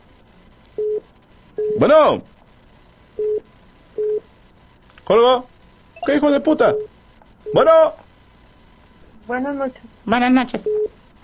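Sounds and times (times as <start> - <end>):
speech: 1.8 - 2.4, 5.1 - 8.0, 9.3 - 11.0
telephone call tone beep while placing a call: 6.0 - 6.9, 10.6 - 10.9.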